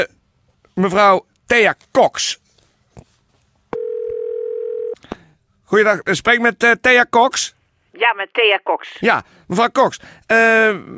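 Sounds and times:
speech: 0.8 - 2.4, 5.7 - 10.9
telephone line tone while a call is being placed: 3.8 - 5.0.

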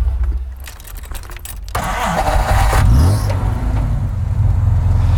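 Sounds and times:
car engine starting and car driving off: 0.1 - 5.1.

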